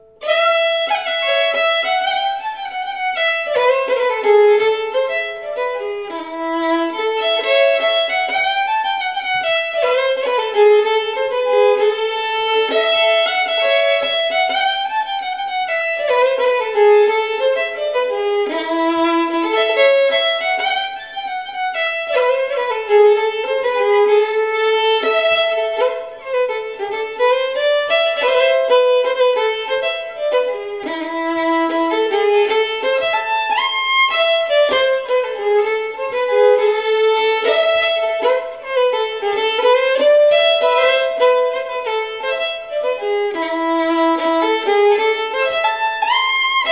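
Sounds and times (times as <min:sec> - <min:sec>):
polska folk tune: 0:00.0 - 0:46.7.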